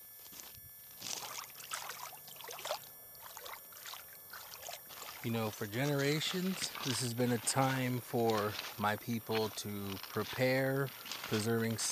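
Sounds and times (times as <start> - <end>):
water trickling and splashing: 1.2 - 7.2
speech: 5.2 - 11.8.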